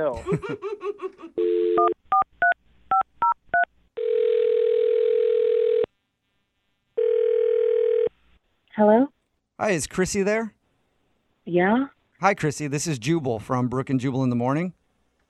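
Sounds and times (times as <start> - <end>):
speech: 0.0 - 1.1, 1.8 - 2.0, 8.8 - 10.6, 11.5 - 14.8
steady telephone dial tone: 1.4 - 2.0, 4.0 - 5.9, 7.0 - 8.1.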